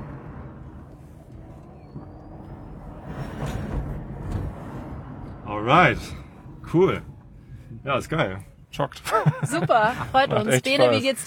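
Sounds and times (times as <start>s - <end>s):
road rumble of electric car accelerating at full power: 0.0s - 11.2s
speech: 5.6s - 7.1s, 7.8s - 11.2s
laughter: 9.0s - 11.1s.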